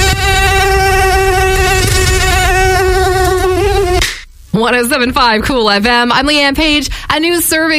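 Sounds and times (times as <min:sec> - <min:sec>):
mosquito whine outdoors in a Canadian summer: 0:00.0 - 0:04.0
speech: 0:04.6 - 0:07.7.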